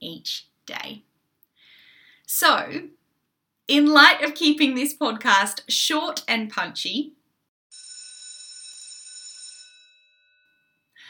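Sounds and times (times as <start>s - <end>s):
speech: 0.1s - 1.1s, 2.3s - 3.0s, 3.7s - 7.2s
school morning tea electric bell ringing: 7.7s - 11.0s.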